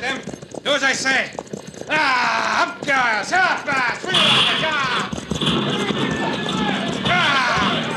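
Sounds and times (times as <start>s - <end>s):
horses' hooves clattering as horse teams are driven into a mission yard: 0.0s - 7.9s
speech: 0.1s - 6.5s
voices calling out: 1.9s - 7.9s.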